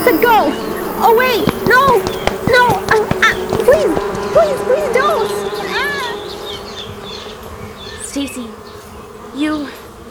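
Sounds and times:
swarm of many bees buzzing: 0.0s - 4.4s
speech: 0.1s - 5.5s, 8.2s - 8.6s, 9.4s - 9.7s.

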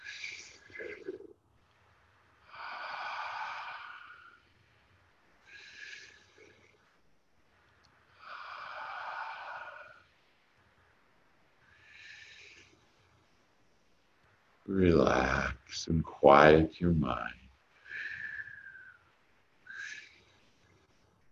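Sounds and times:
slow deep breathing in and out during a relaxation exercise: 2.2s - 14.1s, 17.6s - 21.3s
speech: 14.7s - 17.4s.

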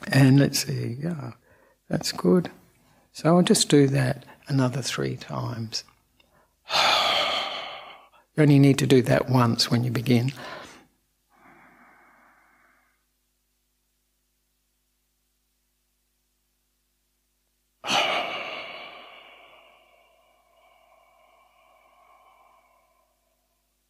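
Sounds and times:
speech: 0.1s - 5.9s, 8.4s - 10.6s
person exhaling through pursed lips during a guided meditation: 6.2s - 8.3s, 10.4s - 13.1s, 17.8s - 23.8s.

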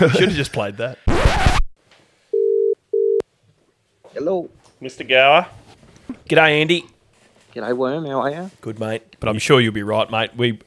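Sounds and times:
speech: 0.0s - 1.5s, 4.2s - 6.9s, 7.6s - 10.6s
phone ringback tone: 2.4s - 3.2s.

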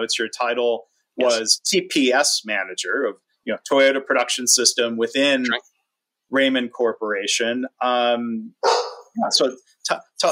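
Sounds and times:
speech: 0.0s - 5.7s, 6.3s - 10.3s
dog barking: 8.6s - 9.1s.

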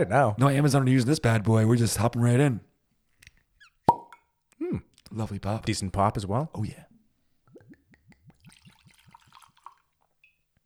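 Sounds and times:
speech: 0.0s - 2.7s, 4.7s - 6.9s
drink glugging from a bottle into a glass: 7.5s - 10.4s.

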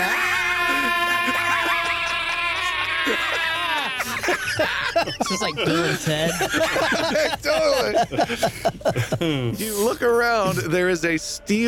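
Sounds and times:
two people screaming: 0.0s - 6.0s
laughter: 0.0s - 10.8s
speech: 4.6s - 11.6s.

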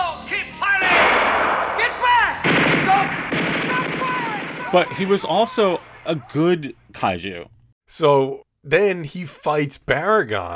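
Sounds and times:
voices shouting in a monster-movie scene: 0.0s - 6.8s
rapid bursts of gunfire in a monster-movie scene: 0.8s - 6.0s
heavy blasts in a monster-movie scene: 0.8s - 6.3s
speech: 4.7s - 10.5s.

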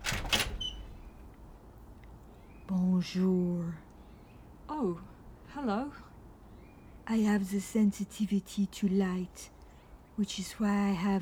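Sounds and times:
door creaking as it swings open: 0.0s - 1.3s
door lock clacking: 0.0s - 1.4s
speech: 2.7s - 3.8s, 4.8s - 6.1s, 7.1s - 9.6s, 10.2s - 11.1s.

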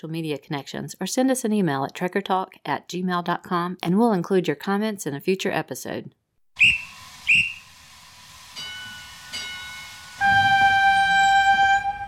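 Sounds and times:
speech: 0.0s - 7.5s
train whistle: 6.6s - 12.0s.

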